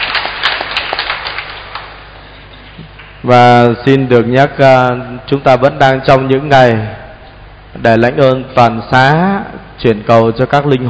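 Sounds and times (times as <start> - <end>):
crowd applauding in church: 0.0 - 2.2
speech: 3.2 - 7.0, 7.7 - 10.8.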